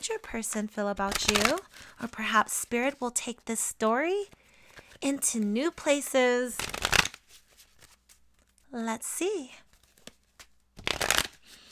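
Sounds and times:
speech: 0.0s - 4.4s, 5.0s - 6.8s, 8.7s - 9.6s
tarot cards being shuffled: 0.3s - 2.0s, 6.6s - 8.6s, 9.7s - 11.7s.

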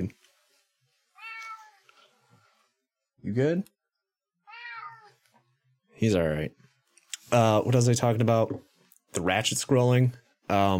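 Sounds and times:
loud cat meow: 1.2s - 1.8s, 4.5s - 5.2s
speech: 3.2s - 3.8s, 6.0s - 6.6s, 7.3s - 10.7s.

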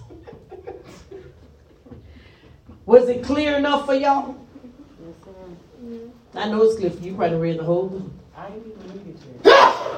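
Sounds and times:
laughter: 0.0s - 2.2s
speech: 2.9s - 4.4s, 6.3s - 8.7s
person sneezing: 9.4s - 9.9s.

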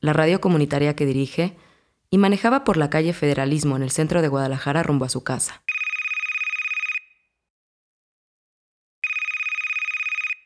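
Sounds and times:
speech: 0.0s - 5.7s
telephone ringing with trilling bell tones: 5.7s - 7.2s, 9.0s - 10.4s.

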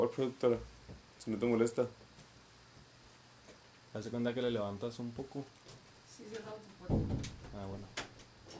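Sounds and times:
speech: 0.0s - 2.0s, 3.9s - 8.0s
door shutting with a low thud and rattle: 6.9s - 8.5s.

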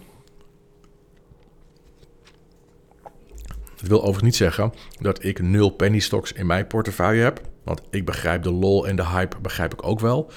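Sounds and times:
person sipping water: 1.5s - 3.8s
swallow: 3.0s - 3.8s
speech: 3.8s - 10.3s.

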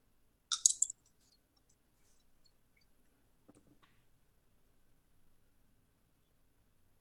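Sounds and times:
dice tumbling and clattering across a table: 0.5s - 0.9s.

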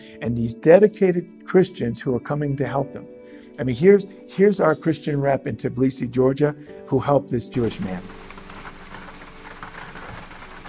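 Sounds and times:
speech: 0.2s - 8.2s
steady rain falling on a surface: 7.6s - 10.6s.

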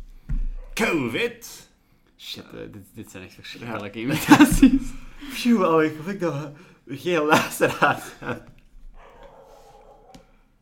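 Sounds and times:
speech: 0.8s - 8.5s
laughter: 4.0s - 5.6s, 7.2s - 8.6s
small dog barking faintly: 9.0s - 10.3s.

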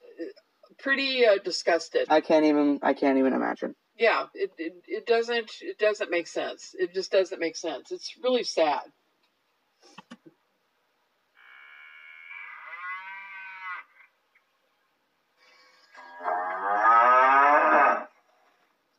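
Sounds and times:
speech: 0.2s - 9.0s
cow mooing: 11.4s - 14.0s, 16.0s - 18.1s.

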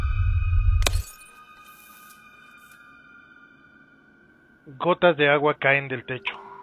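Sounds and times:
mirror shattering: 0.8s - 2.7s
speech: 4.7s - 6.4s.

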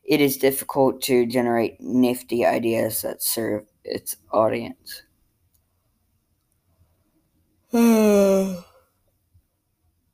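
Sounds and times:
speech: 0.1s - 5.1s, 7.7s - 8.7s
drawn-out voiced yawn: 7.7s - 8.8s.

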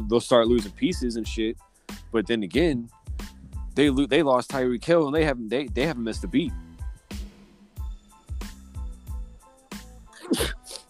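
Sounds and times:
rhythmic thumping beats: 0.0s - 1.5s, 2.6s - 10.8s
speech: 0.1s - 3.0s, 3.8s - 6.6s
single sharp sneeze: 10.2s - 10.8s.

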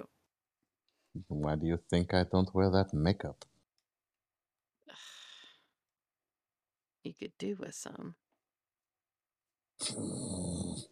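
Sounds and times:
speech: 1.2s - 3.5s, 7.0s - 8.2s, 9.8s - 10.8s
person growling from the throat: 9.8s - 10.8s.

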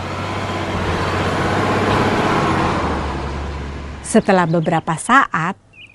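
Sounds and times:
car driving past: 0.0s - 4.3s
speech: 4.1s - 5.6s.

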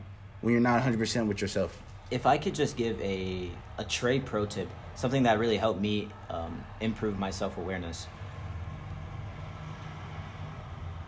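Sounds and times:
truck driving past outside: 0.0s - 11.0s
speech: 0.4s - 8.2s.

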